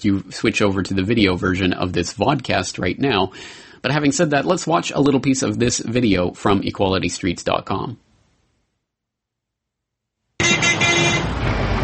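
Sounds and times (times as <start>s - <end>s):
speech: 0.0s - 8.1s
congested city traffic heard from aboard a bus in London: 10.4s - 11.8s
tonal horn-like layer: 10.4s - 11.8s
engine rumble: 11.0s - 11.8s.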